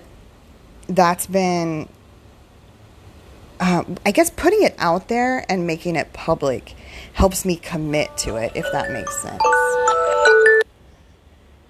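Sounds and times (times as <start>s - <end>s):
speech: 0.9s - 2.0s, 3.6s - 9.6s
phone alarm chime: 8.5s - 10.6s.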